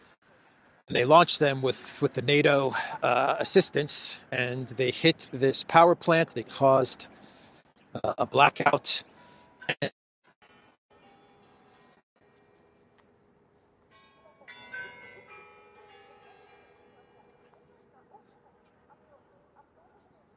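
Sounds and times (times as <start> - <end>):
speech: 0.9 - 7.2, 7.9 - 9.1, 9.7 - 10.0
bell ringing: 13.9 - 17.3.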